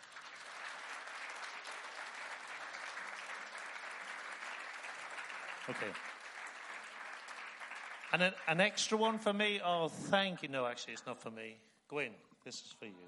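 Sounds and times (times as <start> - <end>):
audience applause: 0.0 - 9.3
speech: 5.7 - 6.2, 8.1 - 13.0.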